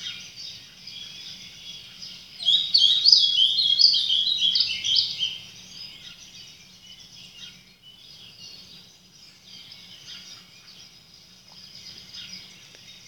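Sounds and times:
birds chirping and twittering: 0:00.0 - 0:13.0.

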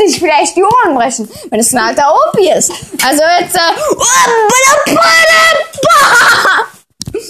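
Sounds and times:
speech: 0:00.0 - 0:07.2
loud shrill screaming after a count of three: 0:03.9 - 0:06.7
laughter: 0:05.8 - 0:07.2.

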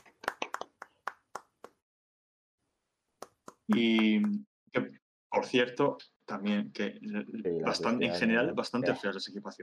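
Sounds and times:
hands clapping: 0:00.0 - 0:01.8, 0:03.2 - 0:04.4
speech: 0:03.7 - 0:09.6.

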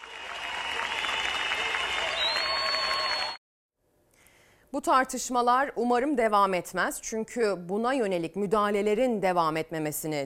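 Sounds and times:
concert audience cheering: 0:00.0 - 0:03.4
large concert audience clapping in a standing ovation: 0:00.0 - 0:03.4
piercing whistle from concert audience: 0:02.0 - 0:03.4
speech: 0:04.7 - 0:10.2.

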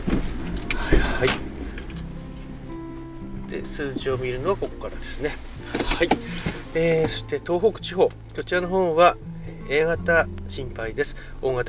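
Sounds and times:
rustles inside the vehicle: 0:00.0 - 0:07.4
car engine rumbling low while rolling to a stop in a parking lot: 0:00.0 - 0:11.6
speech: 0:01.2 - 0:01.4, 0:03.6 - 0:11.6.

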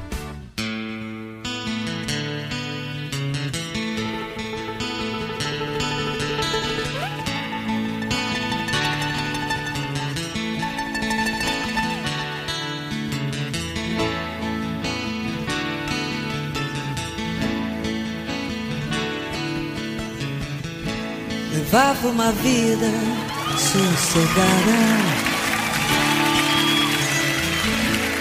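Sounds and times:
strummed guitars in live acoustic rock song: 0:00.0 - 0:28.1
warm continuous band backing: 0:02.7 - 0:28.1
sung lead vocal in live acoustic rock song: 0:21.5 - 0:25.8
speech: 0:21.8 - 0:25.3.

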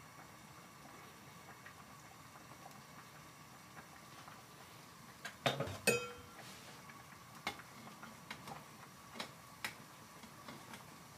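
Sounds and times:
low steady room hum: 0:00.0 - 0:11.1
short metallic ring: 0:05.9 - 0:06.3.

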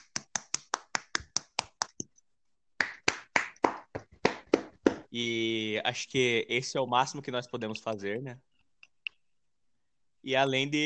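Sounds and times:
hand clapping applause: 0:00.0 - 0:02.1, 0:02.8 - 0:05.1
speech: 0:05.1 - 0:08.5, 0:10.2 - 0:10.8.

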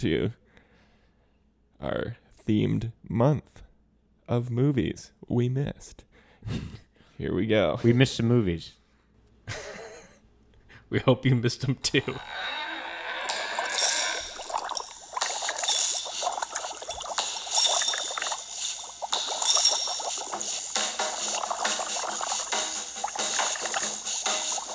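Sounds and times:
speech: 0:00.0 - 0:00.4, 0:01.8 - 0:03.6, 0:04.3 - 0:08.8, 0:09.5 - 0:09.7, 0:10.9 - 0:12.6
bubbling and gurgling sound effect: 0:13.2 - 0:24.7.

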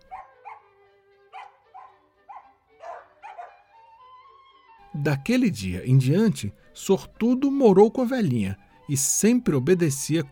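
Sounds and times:
small dog barking in quick uneven yips: 0:00.0 - 0:00.7, 0:01.3 - 0:03.7
speech: 0:04.9 - 0:10.3.

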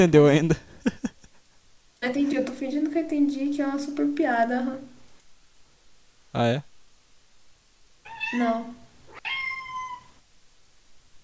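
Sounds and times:
speech: 0:00.0 - 0:01.0, 0:02.0 - 0:04.9, 0:06.3 - 0:06.7, 0:08.3 - 0:08.8
hiss: 0:00.0 - 0:11.2
laughter: 0:00.3 - 0:01.4
cat meowing: 0:08.0 - 0:10.2.

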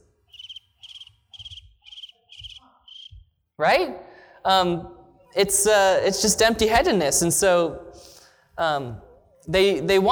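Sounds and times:
crickets chirping: 0:00.2 - 0:03.2
speech: 0:03.6 - 0:07.9, 0:08.6 - 0:10.1.

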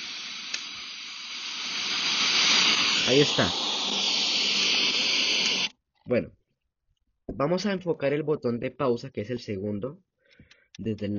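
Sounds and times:
FM radio static from a portable speaker with poor signal: 0:00.0 - 0:05.7
speech: 0:03.1 - 0:03.6, 0:06.1 - 0:06.4, 0:07.3 - 0:11.1.

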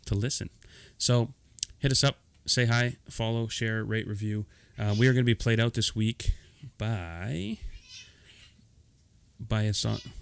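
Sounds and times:
speech: 0:00.1 - 0:07.7, 0:09.4 - 0:10.2
house cat meowing: 0:07.7 - 0:08.5.

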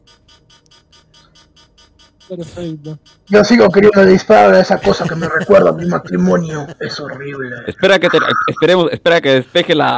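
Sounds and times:
video game alarm with steady pulsing tone: 0:00.0 - 0:05.3
speech: 0:02.3 - 0:09.9
laughter: 0:04.1 - 0:09.9.

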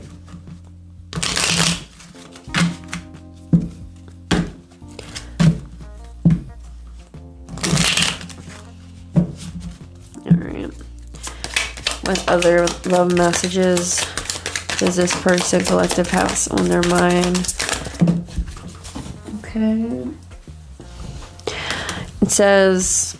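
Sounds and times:
tarot cards riffling: 0:01.1 - 0:03.1, 0:04.8 - 0:05.6, 0:07.5 - 0:08.6, 0:11.1 - 0:19.2
tarot deck taps and slaps as the deck is squared and cut: 0:01.3 - 0:05.7, 0:11.2 - 0:18.7
speech: 0:12.1 - 0:14.1, 0:14.8 - 0:17.8, 0:19.6 - 0:20.3, 0:22.3 - 0:23.1.

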